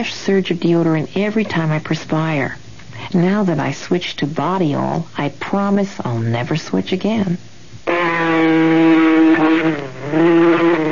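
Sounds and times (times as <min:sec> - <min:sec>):
speech: 0:00.0 - 0:07.5, 0:09.6 - 0:10.4
mosquito whining: 0:07.8 - 0:10.9.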